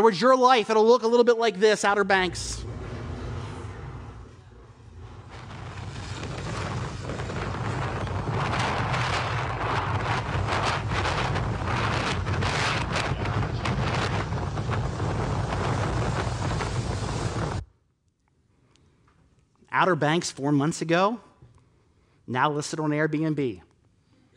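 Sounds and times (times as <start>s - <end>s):
speech: 0.0s - 2.7s, 19.8s - 21.3s, 22.3s - 23.7s
stormy wind buffeting the microphone at the Outer Banks: 2.2s - 17.6s
crashing ocean surf at the Outer Banks: 5.2s - 17.6s.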